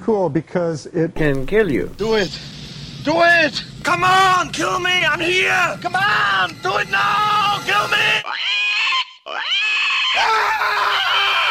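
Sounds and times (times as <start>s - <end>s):
speech: 0.1s - 8.4s
bearded pig squealing: 8.2s - 11.4s.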